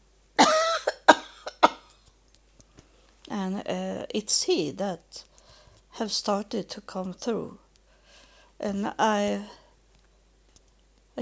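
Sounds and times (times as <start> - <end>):
dry harsh coughing fit: 0.4 - 1.9
speech: 3.4 - 5.3, 6.0 - 7.6, 8.6 - 9.6.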